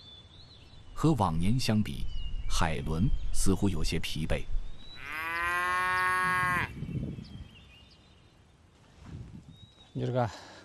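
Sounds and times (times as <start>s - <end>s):
speech: 1.0s - 4.6s, 10.0s - 10.6s
cow in a herd of cattle letting out a long deep moo: 5.0s - 6.7s.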